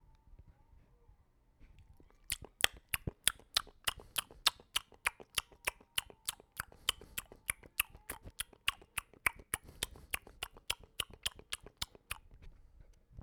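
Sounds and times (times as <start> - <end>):
chomping: 2.1 - 12.2.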